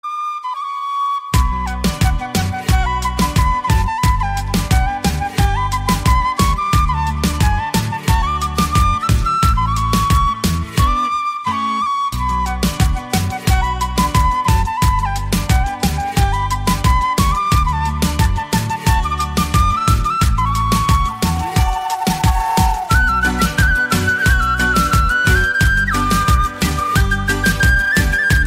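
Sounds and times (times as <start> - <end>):
flute melody: 0.0 - 28.4.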